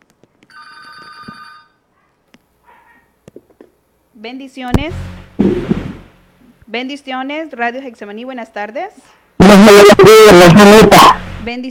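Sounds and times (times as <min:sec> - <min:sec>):
telephone ringing with an incoming call: 0:00.5 - 0:01.8
speech: 0:04.2 - 0:05.1, 0:06.7 - 0:11.6.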